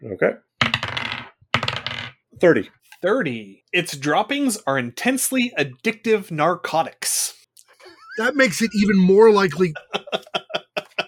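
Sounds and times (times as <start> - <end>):
speech: 0.0 - 0.5, 2.4 - 7.4, 8.2 - 10.4
dice clattering and rattling across a hard tabletop: 0.6 - 2.2
laughter: 7.8 - 11.0.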